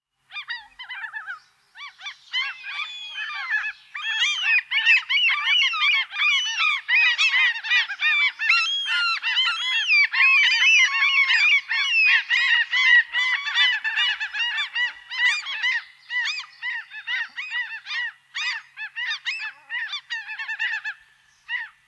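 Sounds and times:
common gull calling: 2.4s - 21.8s.

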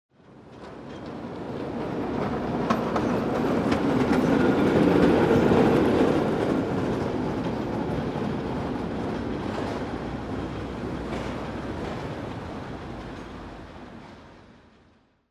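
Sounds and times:
tram passing: 0.2s - 15.1s.

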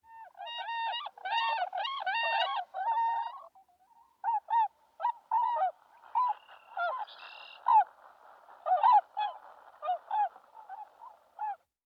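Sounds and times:
swans: 0.1s - 11.7s.

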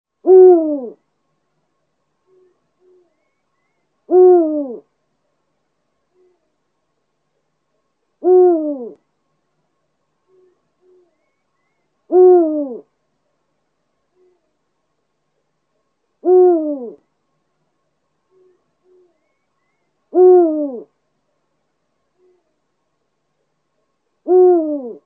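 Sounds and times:
eagle owl calling: 0.2s - 1.0s, 4.1s - 4.8s, 8.2s - 9.0s, 12.1s - 12.8s, 16.2s - 17.0s, 20.1s - 20.9s, 24.3s - 25.0s.

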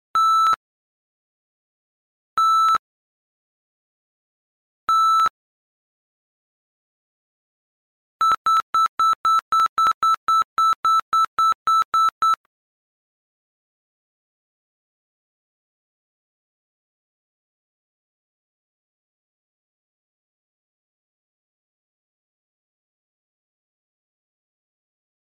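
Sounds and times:
metal detector beep: 0.2s - 0.6s, 2.4s - 2.8s, 4.9s - 5.3s, 8.2s - 12.4s.

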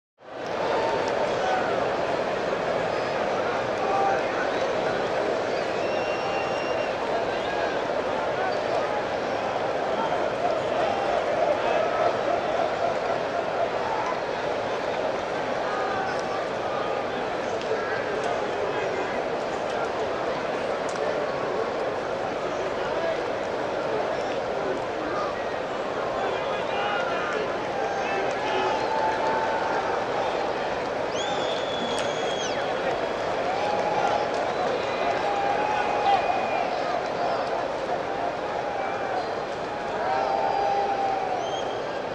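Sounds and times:
stadium crowd ambience: 0.2s - 42.1s.

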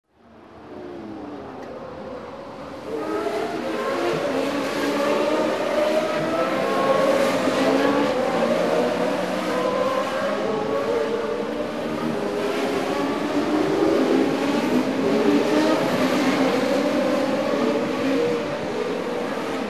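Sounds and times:
Formula 1 racing cars: 0.4s - 19.6s.

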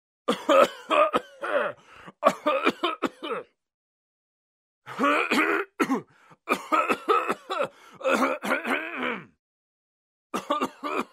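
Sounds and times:
man coughing: 0.3s - 3.5s, 4.9s - 9.4s, 10.4s - 11.1s.

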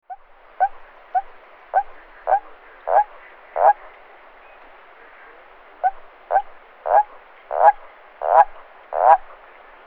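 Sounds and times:
grey toad: 0.1s - 3.9s, 5.8s - 9.4s.

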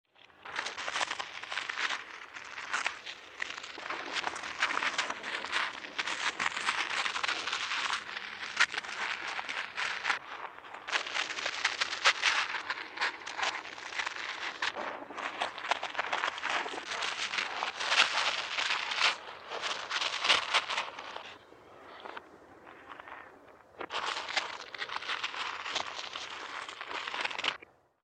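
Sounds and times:
crawling turtle: 0.1s - 27.7s.

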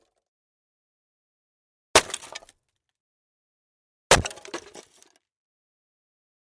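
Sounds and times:
splitting firewood: 2.0s - 2.6s, 4.1s - 5.1s.

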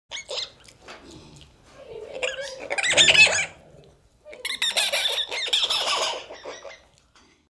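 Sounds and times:
small monkey sounds: 0.1s - 0.7s, 1.8s - 7.0s.

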